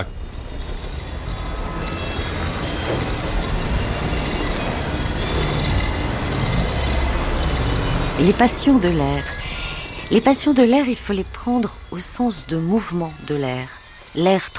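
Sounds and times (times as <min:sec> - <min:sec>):
faint wheel squeals: 0:00.0 - 0:14.5
metro train roaring through an underground tunnel: 0:00.0 - 0:14.5
metro train wheels grinding and rattling: 0:00.0 - 0:14.5
speech: 0:08.2 - 0:09.4, 0:10.1 - 0:14.5.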